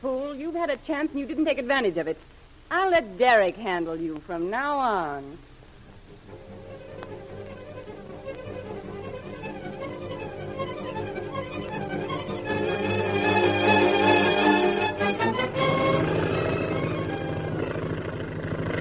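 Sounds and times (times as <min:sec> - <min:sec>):
speech: 0:00.5 - 0:05.5
airplane engine droning while circling to land: 0:06.3 - 0:18.7.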